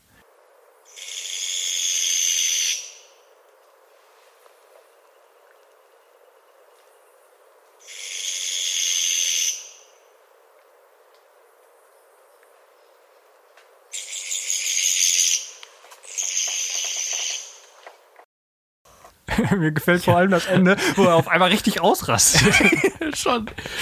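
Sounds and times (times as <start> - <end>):
owl giving harsh raspy screeches: 0.9 - 3.2, 7.8 - 10.0, 13.9 - 17.6
laughter: 19.3 - 23.7
speech: 19.4 - 23.7.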